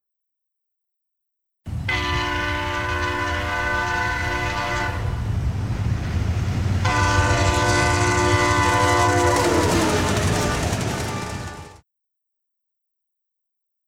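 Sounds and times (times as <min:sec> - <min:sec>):
train rumbling past: 0:01.7 - 0:11.8
train horn blasts: 0:01.8 - 0:05.3, 0:06.8 - 0:11.8.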